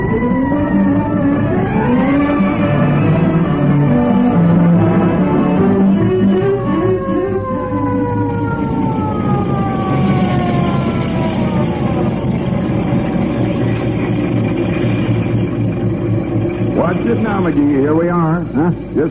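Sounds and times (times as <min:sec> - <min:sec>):
fire engine siren wailing while driven: 0:00.0 - 0:19.0
speech: 0:17.5 - 0:19.0.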